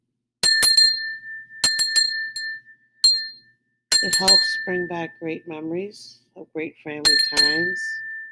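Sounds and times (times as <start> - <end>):
crystal bell from the Black Forest in Germany rung for meditation: 0.4 - 5.4, 7.1 - 8.3
speech: 4.0 - 8.0.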